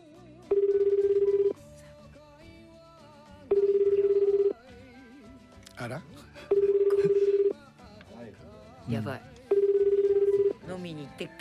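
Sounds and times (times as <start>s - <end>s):
faint music: 0.0s - 11.4s
ringback tone on an outgoing phone call: 0.5s - 1.6s, 3.5s - 4.6s, 6.4s - 7.6s, 9.5s - 10.7s
speech: 11.2s - 11.4s.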